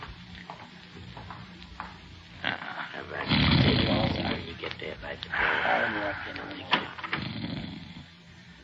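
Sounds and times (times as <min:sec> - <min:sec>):
man snoring loudly while asleep: 0:02.4 - 0:04.6, 0:05.3 - 0:08.2.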